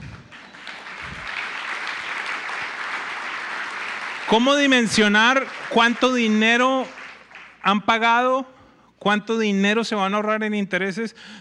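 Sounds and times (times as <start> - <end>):
crowd applauding with many hands clapping: 0.0 - 7.8
speech: 4.3 - 7.0, 7.6 - 11.3.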